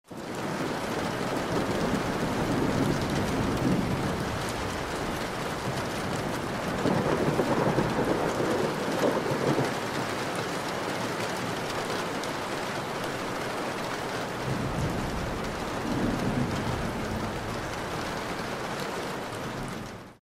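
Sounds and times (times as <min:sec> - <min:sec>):
rain on window sill: 0:00.1 - 0:20.2
distant thunder: 0:00.9 - 0:10.0, 0:14.4 - 0:20.2.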